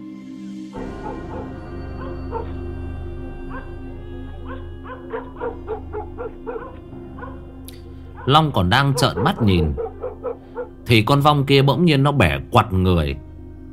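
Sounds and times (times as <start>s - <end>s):
steady low hum: 0.8s - 11.1s
dogs barking at night from houses along a road: 0.8s - 11.3s
speech: 8.3s - 9.8s, 10.9s - 13.2s.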